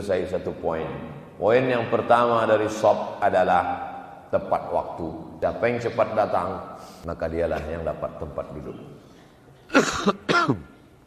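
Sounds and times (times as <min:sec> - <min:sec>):
speech: 0:00.0 - 0:09.1, 0:09.7 - 0:10.7
man giving a religious lecture coughing: 0:09.7 - 0:10.8.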